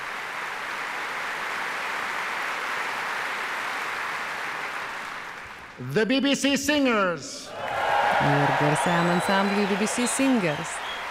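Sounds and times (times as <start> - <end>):
applause for a symphony chorus after a performance: 0.0 - 5.9, 7.5 - 11.1
speech: 5.8 - 7.6, 8.2 - 10.8.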